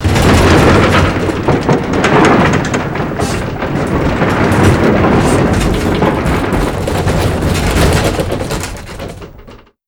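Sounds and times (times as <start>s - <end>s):
Blackhawk helicopter rattling: 0.0s - 9.6s.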